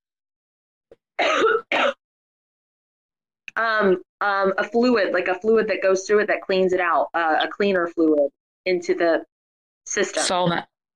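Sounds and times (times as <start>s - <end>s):
woman clearing throat raspily: 1.2s - 2.0s
woman coughing: 1.2s - 2.0s
speech: 3.6s - 9.3s, 9.9s - 10.9s.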